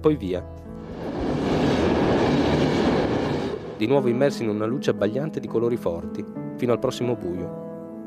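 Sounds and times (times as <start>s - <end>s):
speech: 0.0s - 0.7s, 3.8s - 7.6s
small coastal train rumbling on rails: 0.8s - 4.2s.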